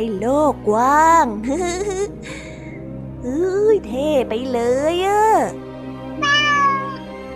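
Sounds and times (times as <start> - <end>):
speech: 0.0 - 2.3, 3.2 - 5.6
cat meowing: 6.2 - 7.1.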